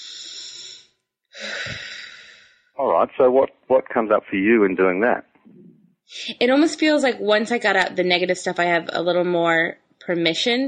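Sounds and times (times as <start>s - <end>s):
person taking a deep breath during a guided exercise: 0.0s - 2.7s
speech: 3.0s - 10.6s.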